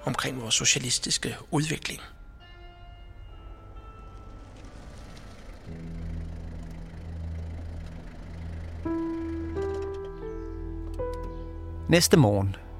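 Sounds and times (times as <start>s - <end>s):
speech: 0.0s - 2.2s, 11.9s - 12.6s
car engine droning and revving up as the car arrives: 4.0s - 10.6s.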